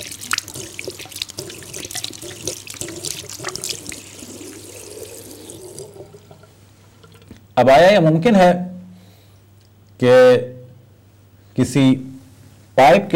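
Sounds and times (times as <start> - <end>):
tap water running into a sink while hands are washed: 0.0 - 7.4
speech: 7.6 - 8.7, 10.0 - 10.5, 11.6 - 12.1, 12.8 - 13.1.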